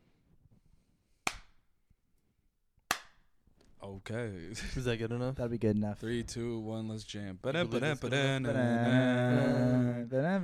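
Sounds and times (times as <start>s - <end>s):
hand claps for audio sync: 1.2s - 1.6s, 2.9s - 3.3s
speech: 3.8s - 10.4s.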